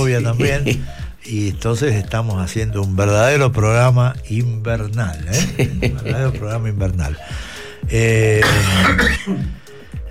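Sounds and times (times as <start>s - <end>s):
speech: 0.1s - 9.6s
harsh rasping cough: 8.4s - 9.6s
throat clearing: 8.4s - 9.6s.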